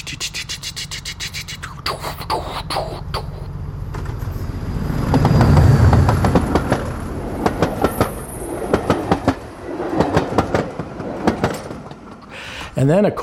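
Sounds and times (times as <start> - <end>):
old mechanical train clattering on rails: 3.9 - 12.3
speech: 12.8 - 13.2.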